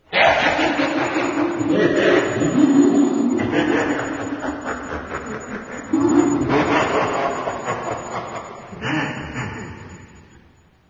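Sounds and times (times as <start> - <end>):
ambient sound of soul sand: 0.0 - 10.8
laughter: 0.1 - 10.1.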